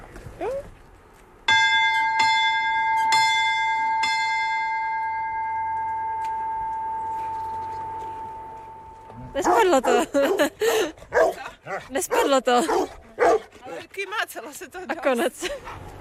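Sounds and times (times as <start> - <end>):
large bell ringing: 1.5 - 10.2
laughter: 9.4 - 11.0
speech: 9.4 - 13.0, 14.0 - 15.9.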